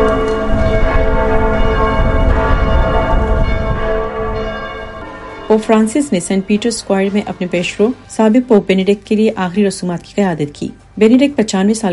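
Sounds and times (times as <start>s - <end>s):
church bells ringing in German cities for a funeral: 0.0s - 8.6s
speech: 5.5s - 11.9s.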